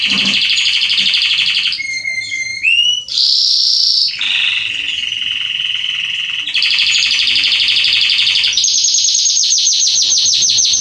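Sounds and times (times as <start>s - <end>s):
male Belgian canary singing trills and buzzing rolls: 0.0s - 10.8s.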